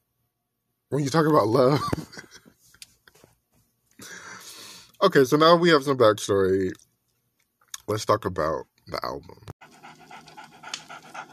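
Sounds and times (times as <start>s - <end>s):
speech: 0.9s - 2.3s, 5.0s - 6.8s, 7.9s - 9.5s
laughter: 1.6s - 2.5s
dog panting: 9.6s - 11.3s.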